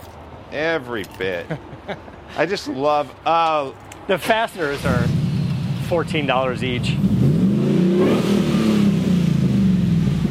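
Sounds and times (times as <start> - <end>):
speech: 0.5 - 5.2, 5.9 - 7.1
car engine revving through short stainless steel side exhaust with dual mufflers: 4.6 - 10.2.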